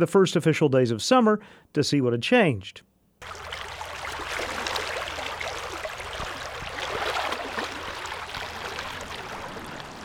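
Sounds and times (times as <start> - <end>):
speech: 0.0 - 3.5
Clear Creek in Fayetteville flowing with bubbling rush: 3.2 - 10.0.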